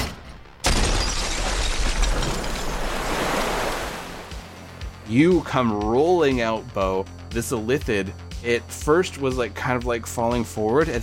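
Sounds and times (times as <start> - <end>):
hissing cascade of breaking glass shards and debris: 0.6 - 3.3
glass shattering outwards: 0.6 - 3.5
speech: 5.1 - 11.0.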